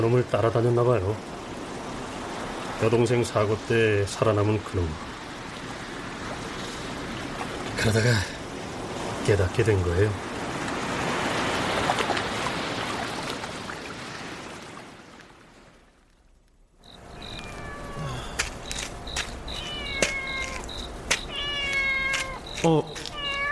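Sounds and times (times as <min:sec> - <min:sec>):
speech: 0:00.0 - 0:01.4, 0:02.8 - 0:05.1, 0:07.8 - 0:08.4, 0:09.3 - 0:10.3, 0:22.6 - 0:23.0
broad washing noise: 0:00.0 - 0:16.0, 0:17.0 - 0:23.5
stray cat meowing: 0:17.1 - 0:18.4, 0:19.3 - 0:23.5.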